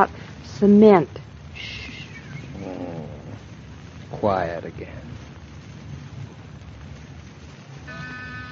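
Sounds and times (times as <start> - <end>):
speech: 0.0 - 1.8, 4.2 - 5.2
cat purring loudly: 1.6 - 3.6.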